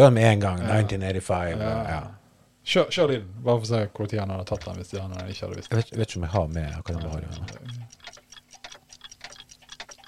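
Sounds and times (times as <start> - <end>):
speech: 0.0 - 7.8
faint low hum: 0.0 - 10.0
many wall clocks ticking: 4.2 - 10.0.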